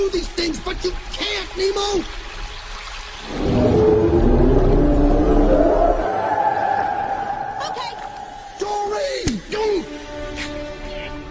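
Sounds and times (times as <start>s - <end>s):
speech: 0.0s - 2.2s
heavy underwater rumble: 3.2s - 8.6s
deep whale call: 3.2s - 8.7s.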